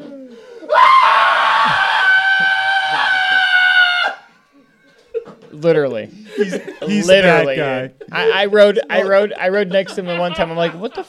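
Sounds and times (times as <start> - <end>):
person mimicking screaming at the peak of a roller coaster ride: 0.7 - 4.3
speech: 5.6 - 11.0
laughter: 6.1 - 11.0.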